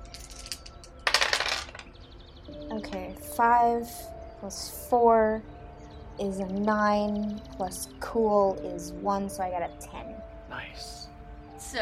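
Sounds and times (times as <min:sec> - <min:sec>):
dice rattling and clattering onto a hard surface: 0:00.1 - 0:01.9
speech: 0:02.9 - 0:05.5, 0:06.2 - 0:10.1.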